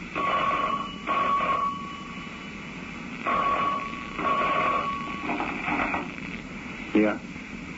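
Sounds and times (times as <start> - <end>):
telephone ringing with electronic trills: 0.2 - 2.3, 3.3 - 5.7
speech: 7.0 - 7.3.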